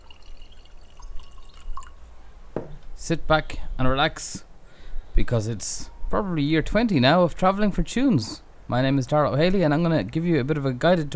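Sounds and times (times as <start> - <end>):
bright drips: 0.0 - 2.0
drink trickling and splashing into a glass: 0.0 - 2.0
speech: 3.0 - 4.5, 5.2 - 11.1.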